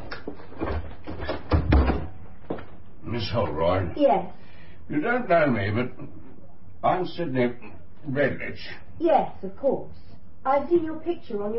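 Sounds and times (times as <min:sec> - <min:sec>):
bedroom door being closed: 0:00.6 - 0:02.2
speech: 0:03.2 - 0:06.2, 0:06.8 - 0:11.5.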